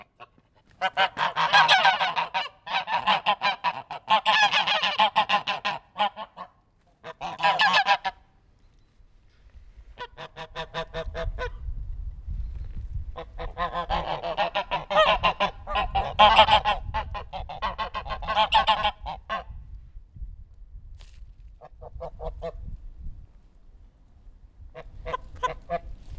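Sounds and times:
goose honking: 0.0s - 8.2s, 10.0s - 11.6s, 13.2s - 19.5s, 24.8s - 26.1s
speech: 0.8s - 1.1s.

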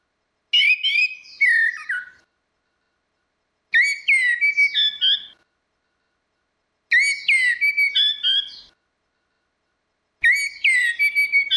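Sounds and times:
Orange-headed thrush whistled song: 0.5s - 2.3s, 3.7s - 5.4s, 6.9s - 8.8s, 10.2s - 11.5s.

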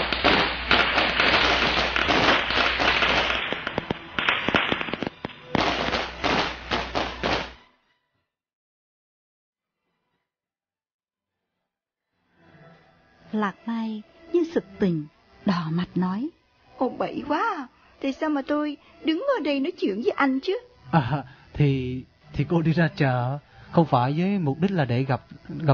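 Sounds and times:
string of firecrackers exploding: 0.0s - 7.6s
speech: 13.4s - 25.7s.

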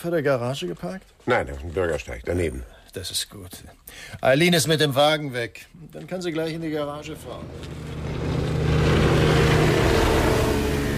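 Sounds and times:
speech: 0.0s - 8.1s
racing boats passing with droning engine roar: 7.1s - 10.9s.

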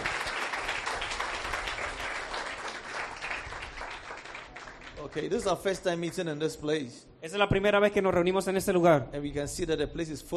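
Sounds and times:
congregation applauding during a bilingual church service: 0.0s - 6.2s
speech: 5.1s - 10.3s.

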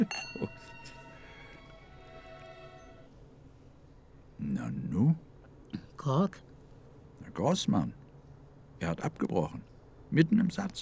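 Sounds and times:
glasses clinking in a toast: 0.0s - 3.1s
speech: 6.0s - 6.5s, 7.4s - 8.0s, 8.8s - 10.7s.

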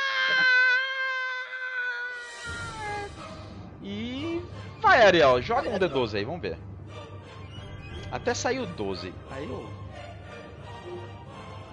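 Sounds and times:
person imitating a creature crying after an arrow pierces its back: 0.0s - 3.2s
speech: 5.0s - 6.7s, 8.1s - 9.8s.

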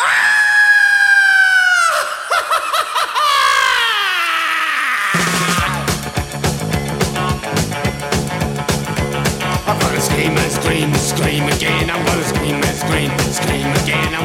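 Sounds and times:
cackling laugh-like cries: 0.0s - 5.9s
person screaming in a song: 0.0s - 6.0s
pulsing musical backing: 5.5s - 14.2s.

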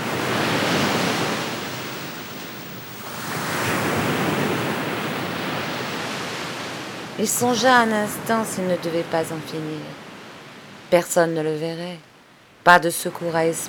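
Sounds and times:
sea waves breaking on the shore: 0.0s - 10.9s
speech: 7.2s - 10.0s, 10.9s - 13.6s.

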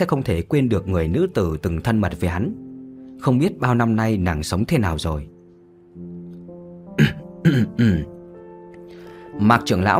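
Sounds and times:
speech: 0.0s - 2.6s, 3.2s - 5.4s, 7.0s - 8.1s, 9.4s - 9.9s
elder clearing his throat in rough gravelly bursts: 7.0s - 8.2s.

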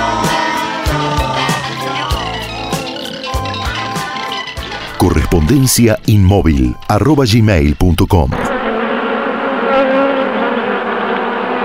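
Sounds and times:
flies buzzing: 0.0s - 5.0s, 7.9s - 11.6s
speech: 5.4s - 8.5s.

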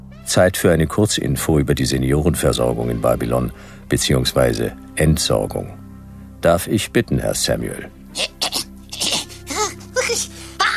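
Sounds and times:
speech: 0.3s - 5.8s, 6.4s - 8.4s
person sneezing: 8.1s - 10.7s.

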